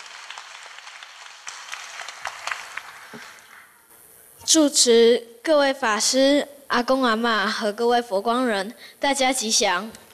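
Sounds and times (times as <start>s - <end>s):
sharp individual claps: 0.0s - 3.8s
audience at a Buddhist gathering applauding: 0.0s - 3.9s
speech: 3.1s - 3.4s, 4.4s - 10.0s.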